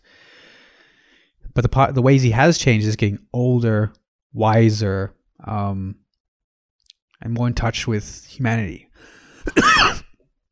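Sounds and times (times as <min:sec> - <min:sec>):
speech: 0:01.6 - 0:06.0, 0:07.2 - 0:10.0
harsh cough: 0:09.4 - 0:10.2.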